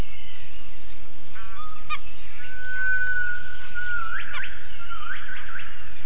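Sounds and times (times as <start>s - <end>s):
constant background hiss: 0.0s - 6.0s
gibbon call: 1.4s - 6.0s.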